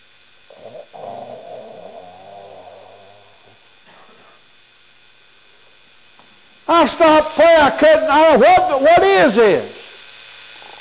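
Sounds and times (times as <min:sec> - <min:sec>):
faint steady hum: 0:00.0 - 0:10.7
man snoring heavily after falling asleep while praying: 0:00.5 - 0:04.4
speech: 0:06.7 - 0:09.8.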